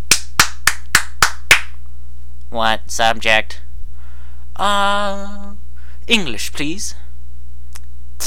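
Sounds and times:
hand claps: 0:00.0 - 0:01.8
faint low hum: 0:00.0 - 0:08.2
speech: 0:02.5 - 0:03.6, 0:04.6 - 0:05.4, 0:06.1 - 0:07.0.

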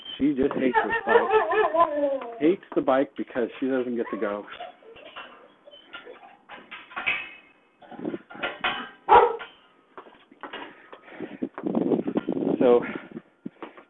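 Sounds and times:
speech: 0:00.2 - 0:04.7
laughter: 0:00.5 - 0:02.6
faint clatter of household objects: 0:03.8 - 0:13.8
female dog barking: 0:09.1 - 0:09.5.

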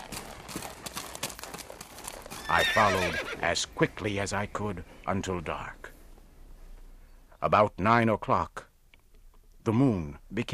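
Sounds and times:
horse hooves galloping down a trail: 0:00.0 - 0:04.4
speech: 0:02.5 - 0:05.8, 0:07.4 - 0:08.6, 0:09.6 - 0:10.5.

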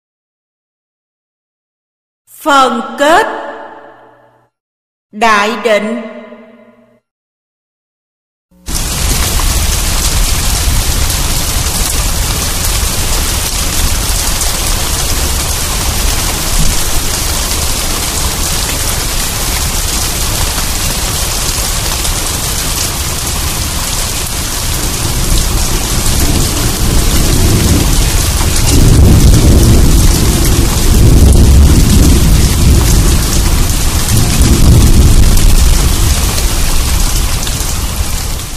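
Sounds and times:
speech: 0:02.4 - 0:03.5, 0:05.1 - 0:06.2
heavy rain pouring down: 0:08.6 - 0:38.5.

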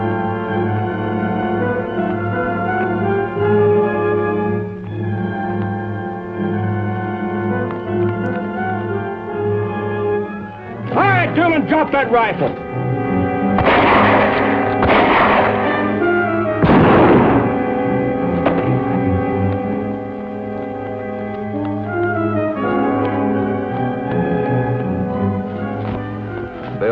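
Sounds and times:
tonal music-like background: 0:00.0 - 0:26.9
speech: 0:11.7 - 0:12.7
shotgun blasts firing buckshot: 0:13.6 - 0:17.7.

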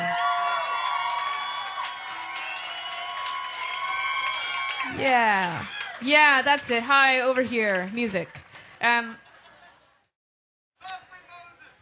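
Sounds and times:
audience cheering with whoops and shouts: 0:00.0 - 0:06.1
audience clapping: 0:00.0 - 0:09.0
speech: 0:05.0 - 0:09.2.

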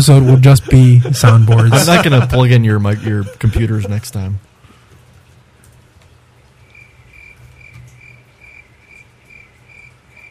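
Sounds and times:
laughter: 0:00.0 - 0:04.4
speech: 0:00.0 - 0:04.5
constant hissing background: 0:00.0 - 0:10.2
cricket chirping: 0:06.6 - 0:10.2.

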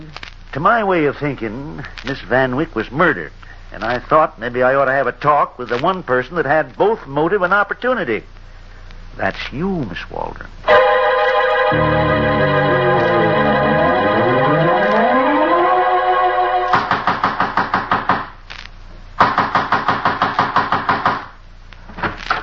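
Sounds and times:
speech: 0:00.5 - 0:08.4, 0:09.2 - 0:11.0, 0:11.7 - 0:12.8
sustained musical tones: 0:10.6 - 0:16.9
pounding on a door: 0:16.8 - 0:18.3, 0:19.2 - 0:21.3.

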